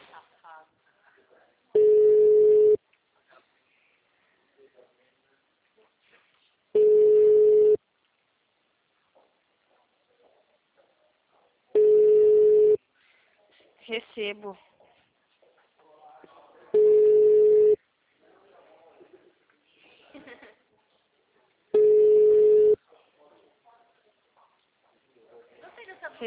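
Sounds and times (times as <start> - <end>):
telephone ringback tone: 1.8 - 2.8, 6.8 - 7.8, 11.8 - 12.8, 16.8 - 17.8, 21.8 - 22.8
speech: 14.2 - 14.8.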